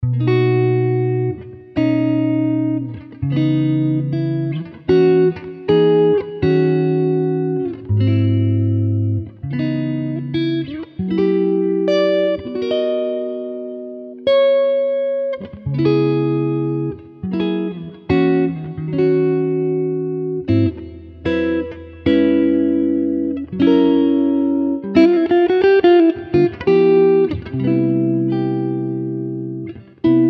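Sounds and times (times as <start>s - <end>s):
smooth jazz guitars: 0.0s - 30.2s.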